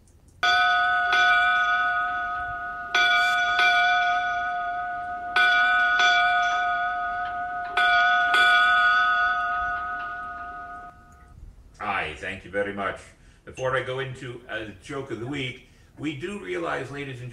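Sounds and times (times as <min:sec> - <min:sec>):
ship's bell ringing for memorial: 0:00.4 - 0:11.4
speech: 0:12.5 - 0:17.3.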